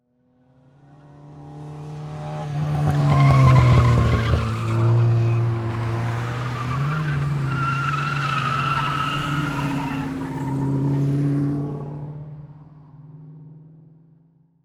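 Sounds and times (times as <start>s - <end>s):
multiple race cars driving by: 0.4s - 13.9s
race car tires squealing: 2.6s - 11.4s.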